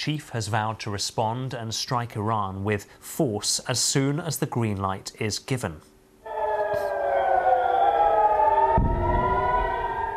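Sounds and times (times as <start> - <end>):
speech: 0.0 - 5.9
air raid siren wailing over northern Israel during Iranian missile strikes: 6.2 - 10.1.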